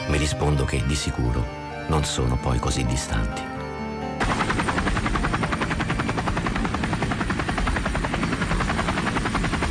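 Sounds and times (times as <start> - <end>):
speech: 0.1 - 3.6
military helicopter rotor blades chopping the air: 4.2 - 9.6.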